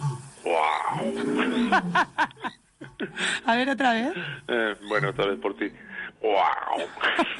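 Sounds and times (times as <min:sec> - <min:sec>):
person growling an imitation of a lion's roar: 0:00.4 - 0:01.7
speech: 0:00.8 - 0:02.6, 0:03.2 - 0:07.3
laughter: 0:01.2 - 0:03.3, 0:06.8 - 0:07.3.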